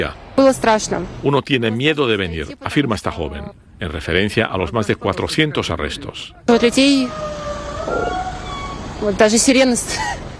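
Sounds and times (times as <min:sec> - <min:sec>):
speech: 0:00.0 - 0:08.3, 0:09.0 - 0:10.3
siren wailing: 0:06.4 - 0:09.7.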